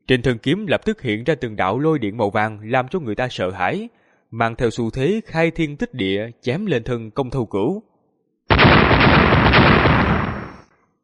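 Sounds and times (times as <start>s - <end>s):
speech: 0.1s - 7.9s
three simultaneous explosions: 8.5s - 10.7s.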